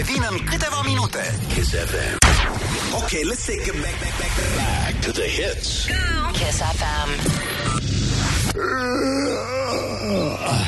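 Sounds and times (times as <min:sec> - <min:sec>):
speech: 0:00.0 - 0:08.0, 0:08.6 - 0:10.6
person yawning: 0:08.6 - 0:10.6.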